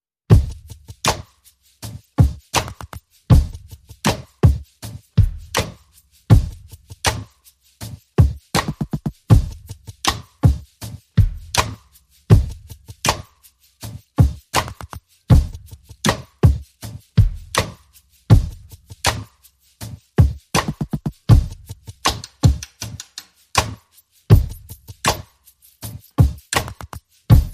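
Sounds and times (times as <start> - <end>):
drums and percussion: 0.3 - 27.5.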